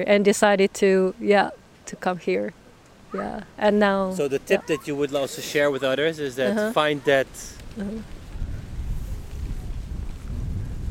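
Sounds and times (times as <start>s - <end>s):
speech: 0.0s - 8.2s
steady gusting wind roaring: 6.8s - 10.8s.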